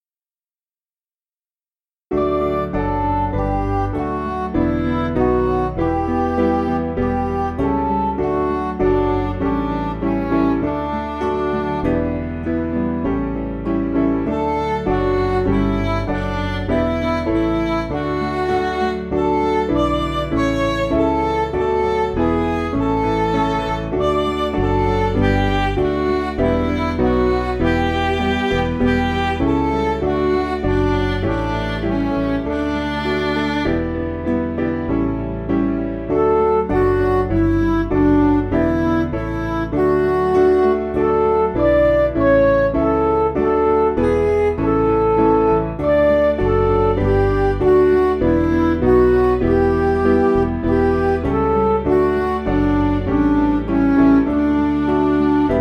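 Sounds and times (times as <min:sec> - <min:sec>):
MIDI music: 0:02.1 - 0:55.5.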